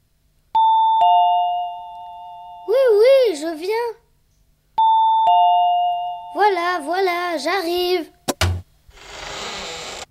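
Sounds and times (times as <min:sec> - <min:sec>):
two-tone ding-dong doorbell chime: 0:00.6 - 0:02.7, 0:04.8 - 0:06.5
speech: 0:03.5 - 0:04.0, 0:06.6 - 0:08.2.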